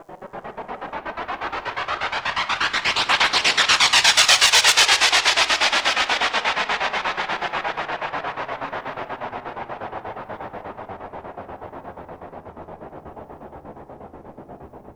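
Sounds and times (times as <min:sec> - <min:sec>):
jet wash texture impulse response: 0:00.2 - 0:11.5.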